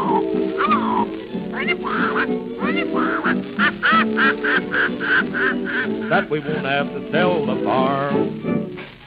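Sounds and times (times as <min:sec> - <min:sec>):
person imitating a parrot squawking in a raspy nasal voice: 0:00.0 - 0:04.0
laughter: 0:00.6 - 0:01.0, 0:01.6 - 0:07.0
speech: 0:06.1 - 0:08.7.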